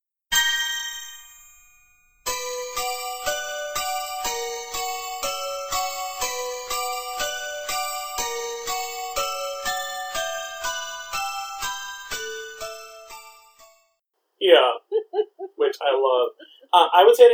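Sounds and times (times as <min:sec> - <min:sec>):
eerie bell-like phone ringtone melody: 0:00.3 - 0:13.8
laughter: 0:14.4 - 0:17.1
speech: 0:15.8 - 0:17.3.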